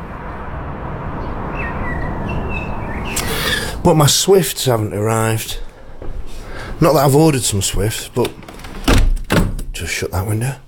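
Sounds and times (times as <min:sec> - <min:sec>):
steady outdoor rumble: 0:00.0 - 0:10.6
blackbird singing fluting phrases: 0:01.5 - 0:03.8
speech: 0:03.9 - 0:05.7, 0:06.8 - 0:08.4, 0:09.8 - 0:10.6.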